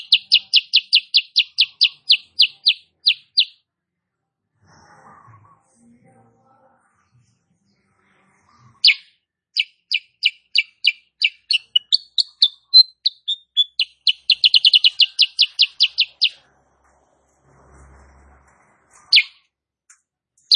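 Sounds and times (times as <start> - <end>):
female sooty-headed bulbul chirping song: 0.0 - 3.6, 8.8 - 16.4, 19.1 - 19.4.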